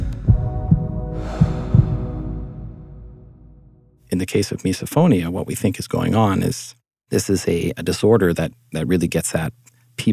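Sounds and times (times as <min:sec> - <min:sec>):
heartbeat thumping in paired beats: 0:00.0 - 0:02.2
speech: 0:04.2 - 0:10.1.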